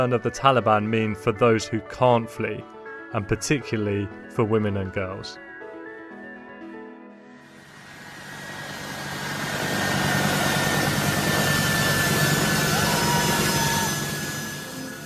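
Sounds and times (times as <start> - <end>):
speech: 0.0 - 5.5
American military jet engine roaring on takeoff: 7.5 - 15.0.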